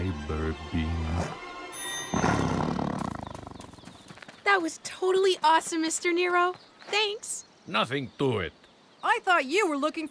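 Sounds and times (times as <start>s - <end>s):
speech: 0.2s - 1.5s, 4.6s - 10.1s
tiger roaring: 2.2s - 3.5s.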